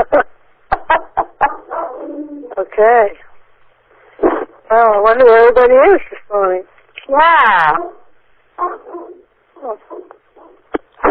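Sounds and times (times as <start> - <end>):
dog barking: 0.9 - 2.2, 7.8 - 10.7
dog whining: 1.4 - 2.6, 7.8 - 10.7
speech: 2.8 - 3.2, 4.7 - 8.0.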